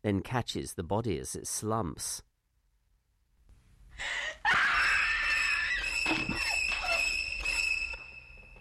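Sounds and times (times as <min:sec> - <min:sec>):
speech: 0:00.0 - 0:02.3, 0:04.0 - 0:04.6
woman screaming: 0:04.4 - 0:07.2.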